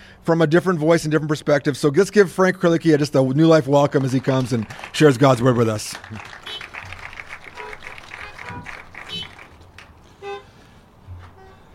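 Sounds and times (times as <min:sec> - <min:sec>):
speech: 0:00.2 - 0:06.6
chorus of car horns honking: 0:06.2 - 0:11.7.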